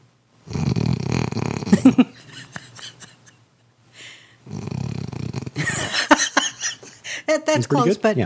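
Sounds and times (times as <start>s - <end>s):
person imitating a dog's snoring: 0.5s - 2.0s, 4.5s - 5.6s
speech: 1.7s - 2.2s, 7.6s - 8.2s.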